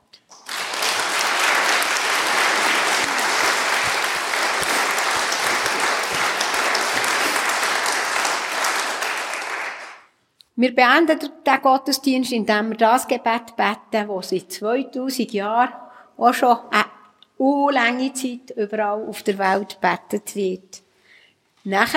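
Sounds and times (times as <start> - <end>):
audience applauding in a church: 0.3 - 10.2
speech: 10.6 - 20.8, 21.6 - 21.9.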